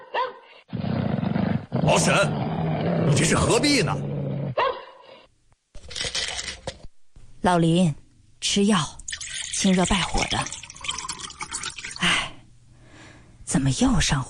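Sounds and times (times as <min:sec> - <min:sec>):
dog growling and barking: 0:00.7 - 0:05.2
speech: 0:01.9 - 0:04.1, 0:07.4 - 0:09.0, 0:09.6 - 0:10.6, 0:13.6 - 0:14.2.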